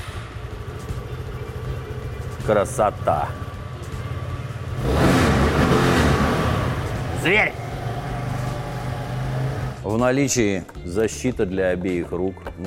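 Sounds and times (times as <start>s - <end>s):
motorbike engine starting, idling and revving: 0.0s - 9.8s
speech: 2.4s - 3.5s, 7.2s - 7.6s, 9.9s - 12.6s.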